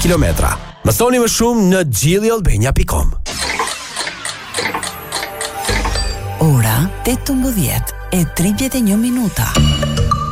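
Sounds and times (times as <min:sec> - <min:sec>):
speech: 0:00.0 - 0:03.7, 0:06.4 - 0:10.0
clock ticking in a store advertisement: 0:03.3 - 0:07.4.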